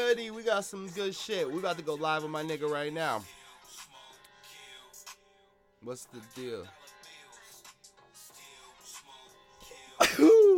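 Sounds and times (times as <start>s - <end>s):
speech: 0.1s - 3.9s, 5.8s - 6.8s
person coughing after a big hit of RSO cannabis oil: 10.0s - 10.5s.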